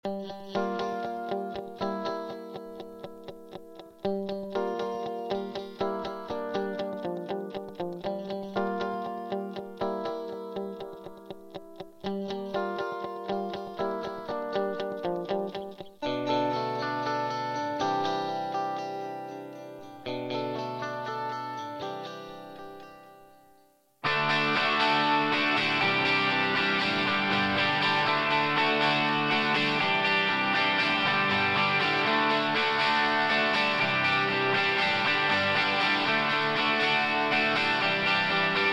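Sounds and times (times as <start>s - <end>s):
clean guitar with delay effect: 0.0s - 38.7s.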